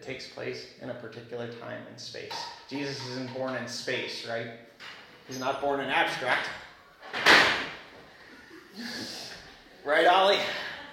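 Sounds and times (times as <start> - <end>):
speech: 0.0 - 7.5, 8.8 - 9.2, 9.8 - 10.7
doors thrown open with a sharp bang: 7.0 - 7.9.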